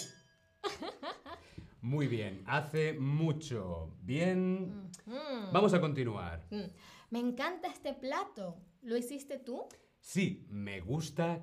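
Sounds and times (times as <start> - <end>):
glasses clinked in a toast: 0.0 - 0.8
speech: 1.8 - 11.4.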